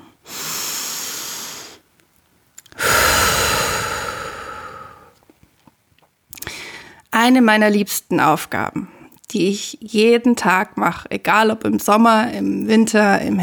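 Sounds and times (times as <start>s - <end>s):
slow deliberate breathing exercise: 0.0s - 1.8s, 2.7s - 5.2s
speech: 7.2s - 13.4s.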